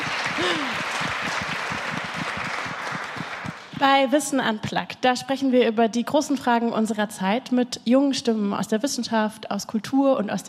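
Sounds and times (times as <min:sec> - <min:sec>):
room full of people clapping: 0:00.0 - 0:03.8
person whooping or cheering: 0:00.4 - 0:01.0
speech: 0:00.4 - 0:01.0, 0:03.8 - 0:10.4.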